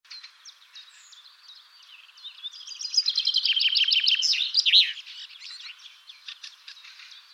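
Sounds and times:
common chaffinch Fringilla coelebs singing: 0.1 - 7.3.

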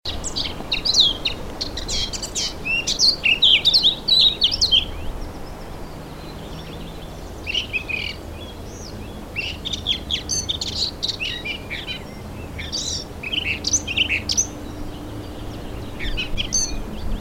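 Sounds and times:
Eurasian blackcap singing rich varied warbling notes: 0.1 - 17.1.

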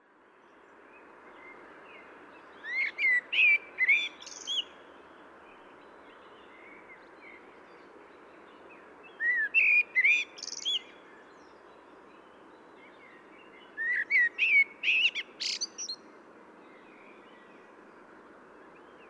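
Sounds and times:
constant low background noise: 0.0 - 19.0
Common blackbird Turdus merula singing mellow slurred whistles: 2.6 - 4.8, 9.1 - 11.6, 12.8 - 16.0.

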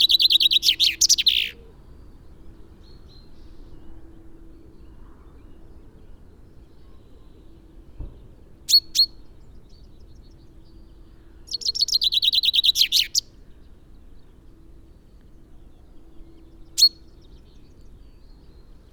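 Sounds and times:
common chaffinch Fringilla coelebs singing: 0.0 - 1.6, 11.5 - 13.3, 16.5 - 18.8.

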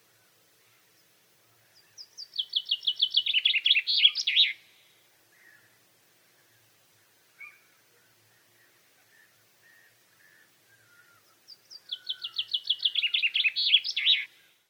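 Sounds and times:
Common chaffinch Fringilla coelebs song of descending trills with flourish: 0.0 - 14.6.

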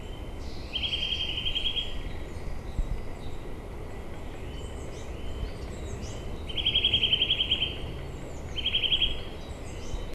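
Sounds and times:
Eurasian nuthatch Sitta europaea giving trills of piping notes: 0.0 - 2.1, 4.3 - 10.1
background hiss: 0.0 - 10.1.

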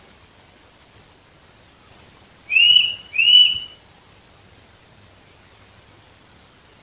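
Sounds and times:
Eurasian nuthatch Sitta europaea calling with whistles: 2.5 - 3.8.

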